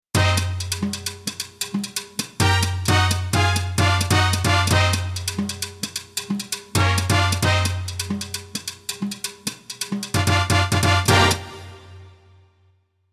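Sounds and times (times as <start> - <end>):
Roland XP-80 brass beat: 0.1 - 1.4, 2.4 - 5.8, 6.7 - 8.4, 10.1 - 12.3.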